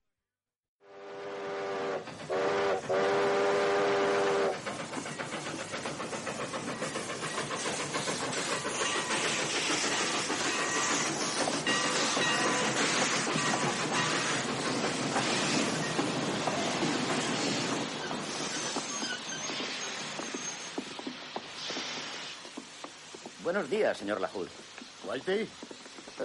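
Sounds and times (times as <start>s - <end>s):
train whistle blasts: 0.8s - 4.6s
train rattling and clanking on rails: 1.4s - 26.2s
speech: 23.6s - 25.6s.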